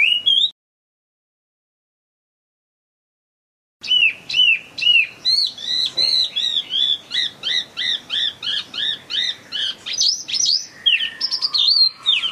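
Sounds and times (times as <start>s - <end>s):
Chinese hwamei in full song: 0.0s - 0.5s, 3.8s - 12.3s.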